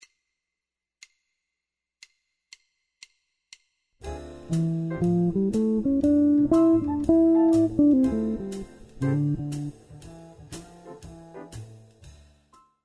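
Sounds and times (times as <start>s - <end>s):
jazz guitar improvisation: 4.5s - 10.0s.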